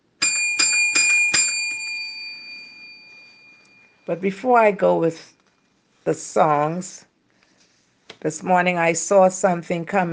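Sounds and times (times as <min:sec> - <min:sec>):
hand bell ringing: 0:00.2 - 0:04.0
speech: 0:04.1 - 0:05.4, 0:06.0 - 0:07.1, 0:08.2 - 0:10.1.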